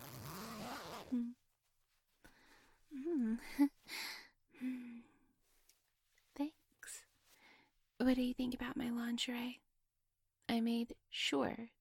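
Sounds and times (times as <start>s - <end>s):
dress zipper pulled down: 0.0s - 1.3s
soft sighs and hums: 2.4s - 5.3s
speech: 8.0s - 9.6s, 10.5s - 11.7s.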